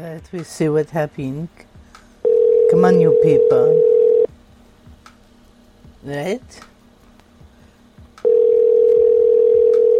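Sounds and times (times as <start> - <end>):
speech: 0.0 - 3.9, 6.0 - 6.7
telephone ring tone heard by a caller: 2.2 - 4.3, 8.3 - 9.9.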